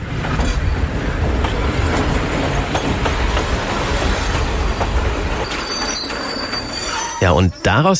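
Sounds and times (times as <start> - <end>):
train moving through a station: 0.0 - 7.9
clattering train wheels: 1.4 - 7.2
train brakes squealing: 4.7 - 7.9
speech: 7.2 - 7.9.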